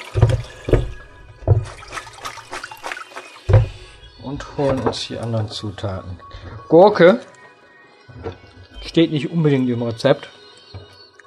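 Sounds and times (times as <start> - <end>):
running water from a tap as lettuce is washed: 0.0 - 6.0
speech: 4.3 - 7.3, 9.0 - 10.4.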